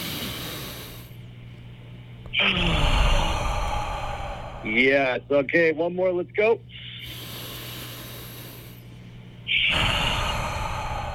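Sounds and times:
deep inhale and exhale during a guided breathing exercise: 0.0 - 1.2, 2.4 - 5.2, 6.7 - 11.1
speech: 2.4 - 2.9, 4.6 - 6.8.

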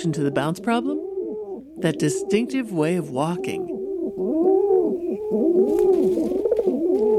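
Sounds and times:
speech: 0.0 - 1.0, 1.8 - 4.5, 5.3 - 6.2
pigeons cooing: 0.0 - 7.1.

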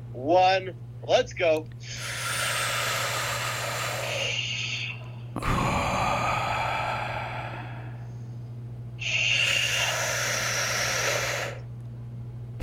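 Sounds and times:
faint steady low hum: 0.0 - 12.6
speech: 0.2 - 2.4
deep slow breathing during a guided relaxation exercise: 1.8 - 11.7.

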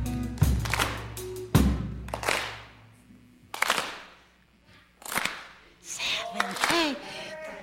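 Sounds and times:
audience clapping in slow steady unison beat with reverberation: 0.4 - 1.2, 2.0 - 2.8, 3.5 - 4.2, 5.0 - 7.1.

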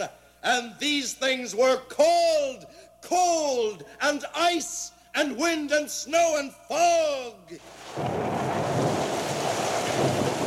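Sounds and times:
speech: 0.0 - 8.6
deep rumble of thunder: 7.6 - 10.4.

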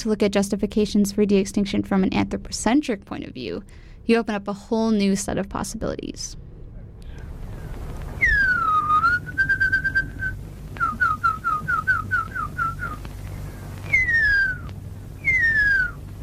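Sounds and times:
speech: 0.0 - 6.4
faint hiss: 0.0 - 16.2
Maori tracker whistling an imitation of the huia call: 8.2 - 13.0, 13.8 - 16.0.

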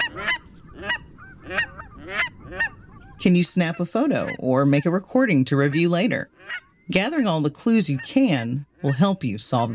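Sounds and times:
cackling goose sharp nasal yelps: 0.0 - 3.2, 5.7 - 6.8
speech: 3.2 - 9.7.

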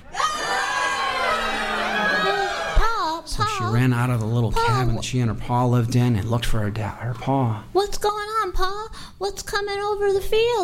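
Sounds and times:
crowd of people screaming and shouting: 0.0 - 2.8
speech: 3.7 - 10.6.

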